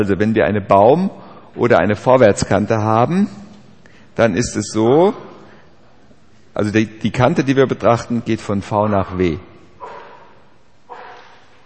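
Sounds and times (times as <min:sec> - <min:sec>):
speech: 0:00.0 - 0:03.4, 0:04.2 - 0:05.3, 0:06.6 - 0:10.0
steady background hiss: 0:00.0 - 0:11.6
dog barks: 0:09.8 - 0:11.6.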